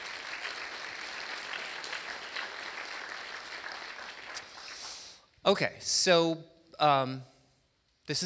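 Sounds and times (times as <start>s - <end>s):
audience applause at a candidates' forum: 0.0s - 5.1s
speech: 5.5s - 7.3s, 8.1s - 8.2s.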